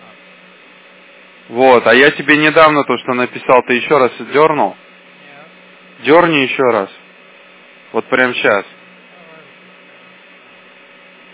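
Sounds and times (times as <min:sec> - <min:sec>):
fan humming: 0:00.0 - 0:11.3
speech: 0:01.5 - 0:04.8, 0:06.0 - 0:07.0, 0:07.9 - 0:08.8.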